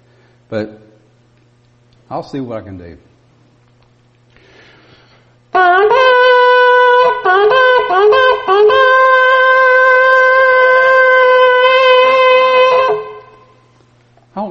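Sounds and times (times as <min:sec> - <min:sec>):
speech: 0:00.5 - 0:00.9, 0:02.1 - 0:03.1, 0:07.4 - 0:08.8
blast on a makeshift shofar made of cow's horn pieces: 0:05.5 - 0:13.7.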